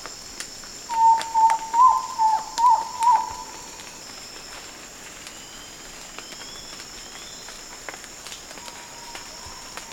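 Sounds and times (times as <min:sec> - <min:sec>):
frog calling: 0:00.9 - 0:03.8.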